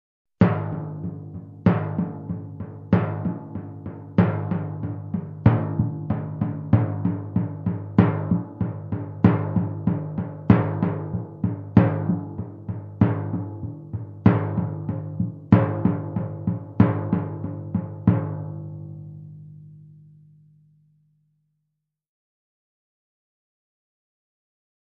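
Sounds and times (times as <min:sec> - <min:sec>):
majestic timpani groove: 0:00.4 - 0:19.3.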